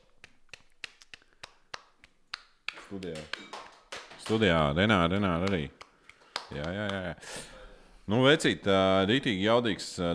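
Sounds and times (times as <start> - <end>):
sharp scattered hand claps in a studio: 0.0 - 7.1
speech: 2.9 - 3.5, 4.3 - 5.8, 6.5 - 7.5, 8.1 - 10.1.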